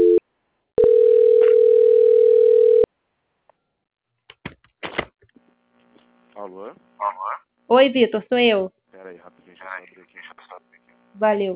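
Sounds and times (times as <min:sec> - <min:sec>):
telephone line tone during call transfer: 0:00.0 - 0:00.2, 0:00.8 - 0:02.9
speech: 0:07.7 - 0:09.8, 0:11.2 - 0:11.5.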